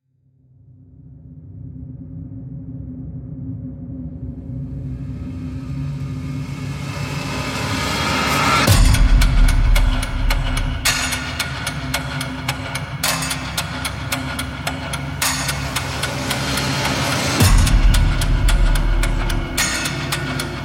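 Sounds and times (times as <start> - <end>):
industrial rhythmic pulse: 5.8 - 20.6.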